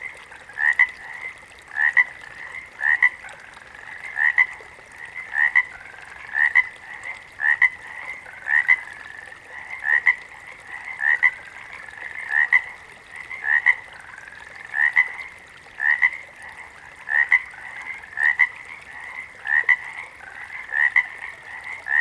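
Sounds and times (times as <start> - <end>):
water frog croaking: 0.0 - 21.9.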